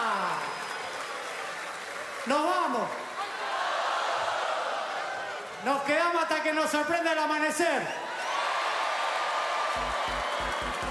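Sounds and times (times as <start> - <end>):
crowd applause: 0.0 - 5.5, 8.2 - 10.9
speech: 2.2 - 3.0, 5.6 - 8.0.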